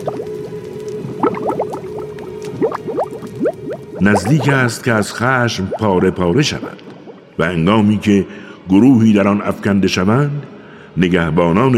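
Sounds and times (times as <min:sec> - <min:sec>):
thick liquid boiling and bubbling: 0:00.0 - 0:07.4
speech: 0:04.0 - 0:06.8, 0:07.4 - 0:11.7.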